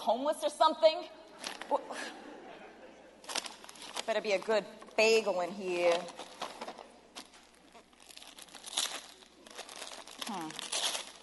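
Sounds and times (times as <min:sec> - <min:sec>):
speech: 0:00.0 - 0:02.3, 0:04.0 - 0:06.2, 0:10.3 - 0:10.7
laughter: 0:01.4 - 0:03.2
Christmas gift wrapping paper crinkling and tearing: 0:03.2 - 0:04.5, 0:05.7 - 0:11.2.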